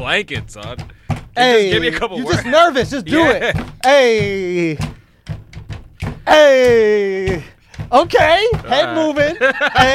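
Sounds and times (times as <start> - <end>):
speech: 0.0 - 4.9, 6.3 - 9.9
hand banging on a table: 0.0 - 9.9
laughter: 1.8 - 4.8, 8.7 - 9.9.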